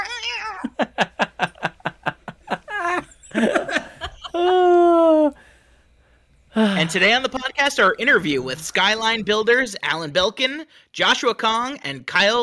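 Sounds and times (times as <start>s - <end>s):
cat meowing: 0.0s - 0.8s
laughter: 0.6s - 5.4s
speech: 6.9s - 12.4s.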